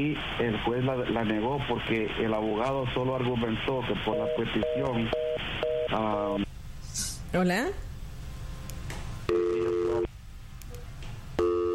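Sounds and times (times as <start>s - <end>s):
speech: 0.0s - 5.3s, 5.9s - 6.4s, 7.3s - 7.9s
faint hiss: 0.0s - 11.7s
busy tone after a dropped phone call: 4.0s - 6.4s, 9.3s - 10.1s, 11.4s - 11.7s.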